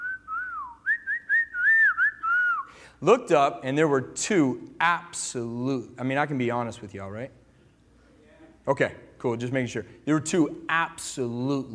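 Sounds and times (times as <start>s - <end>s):
person whistling a short wavering melody: 0.0s - 2.9s
speech: 3.0s - 7.4s, 8.7s - 11.7s.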